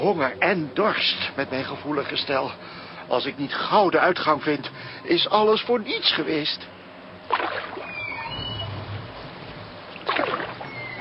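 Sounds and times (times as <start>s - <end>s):
speech: 0.0s - 7.6s
oar strokes of a small rowing boat splashing in a river: 7.3s - 7.8s, 9.9s - 10.7s
river water gurgling: 7.3s - 7.9s, 9.9s - 10.7s
faint creaking of a rowing boat: 7.8s - 9.8s, 10.6s - 11.0s.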